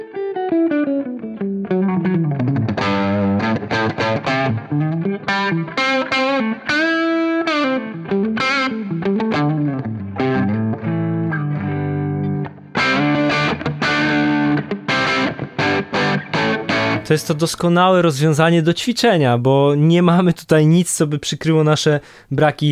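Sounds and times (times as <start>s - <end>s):
electric guitar through a Marshall Plexi amp at full distortion playing a riff: 0.0s - 17.4s
speech: 17.2s - 22.6s.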